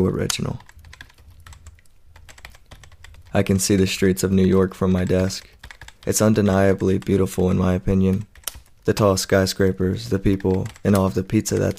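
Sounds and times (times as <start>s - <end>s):
speech: 0.0s - 0.7s, 3.3s - 11.7s
typing on a computer keyboard: 0.3s - 3.4s, 5.0s - 6.2s, 8.1s - 8.8s, 10.2s - 11.7s.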